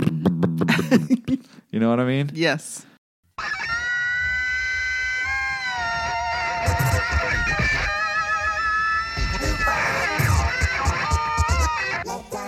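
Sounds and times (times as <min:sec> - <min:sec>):
speech: 0:00.7 - 0:01.2, 0:01.8 - 0:03.6
loud distorted funk guitar solo: 0:03.4 - 0:12.0.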